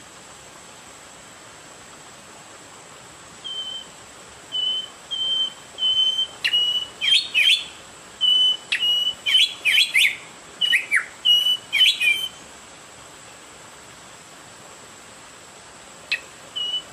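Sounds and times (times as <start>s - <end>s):
Oriental magpie-robin giving high whistled notes and clicking flourishes: 4.6s - 7.6s, 8.2s - 12.3s, 16.1s - 16.8s.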